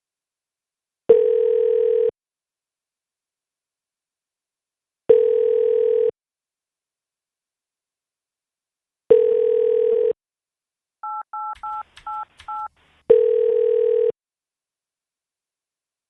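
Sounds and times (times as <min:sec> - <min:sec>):
steady phone dial tone: 0:01.1 - 0:02.1, 0:05.1 - 0:06.1, 0:09.1 - 0:10.2, 0:13.1 - 0:14.2
DTMF two-pitch keypad beeps played into a phone: 0:11.0 - 0:12.7.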